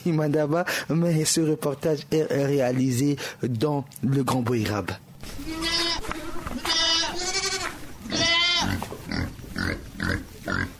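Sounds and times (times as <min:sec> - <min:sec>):
speech: 0:00.0 - 0:05.8
free-roaming goats bleating: 0:05.2 - 0:10.7.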